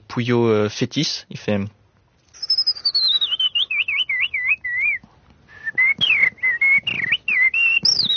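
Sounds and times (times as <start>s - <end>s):
speech: 0.2s - 1.8s
person whistling an imitation of blackbird song: 2.4s - 8.1s.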